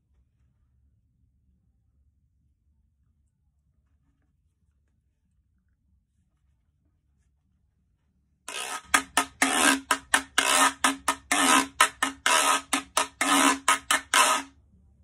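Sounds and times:
guiro scraping: 8.5s - 14.5s.

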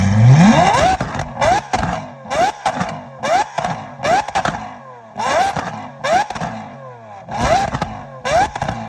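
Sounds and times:
Lamborghini Aventador engine: 0.0s - 8.8s.

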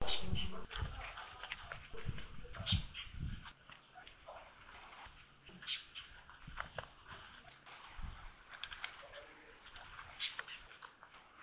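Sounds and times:
lesser elaenia calling: 0.0s - 6.4s, 8.8s - 11.4s.

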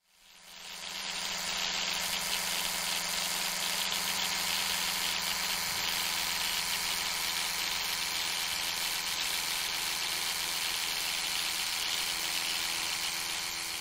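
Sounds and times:
electric toothbrush: 0.0s - 13.7s.

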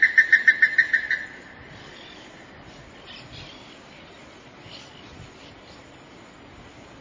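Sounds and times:
plumbeous ibis calling: 0.0s - 6.2s.

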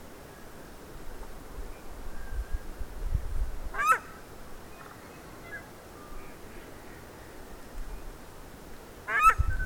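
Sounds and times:
steady low background noise: 0.0s - 9.6s
paradise shelduck honking: 3.8s - 4.2s.

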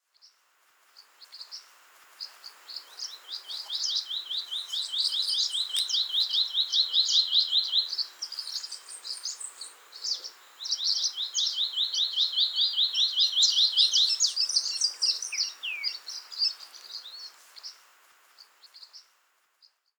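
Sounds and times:
scrub greenlet calling: 2.8s - 17.7s.

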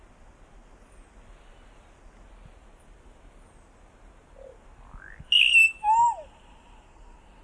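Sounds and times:
solitary cacique whistling calls: 4.4s - 6.6s.

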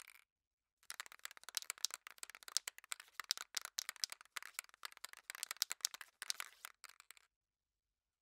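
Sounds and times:
spray can shaking: 1.1s - 6.7s.

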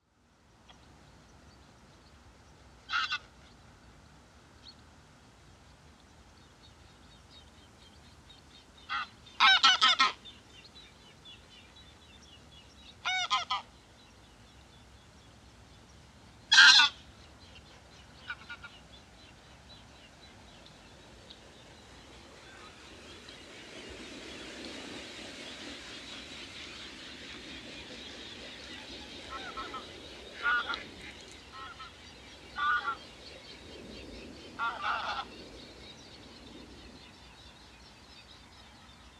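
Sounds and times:
Anser anser greylag goose: 2.9s - 3.3s, 8.9s - 10.2s, 13.0s - 13.7s, 16.5s - 17.0s, 29.2s - 32.0s, 34.6s - 35.3s.

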